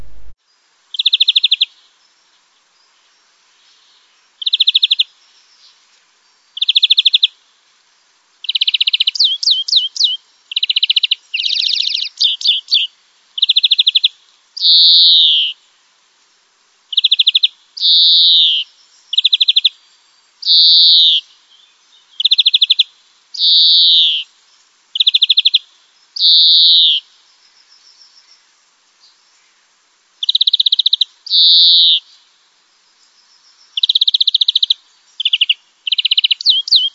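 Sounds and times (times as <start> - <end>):
European greenfinch song with high chirps and rapid trills: 1.0 - 1.8, 4.4 - 5.1, 6.6 - 7.3, 8.4 - 15.6, 16.9 - 19.8, 20.4 - 24.3, 25.0 - 27.0, 30.2 - 32.1, 33.7 - 36.9.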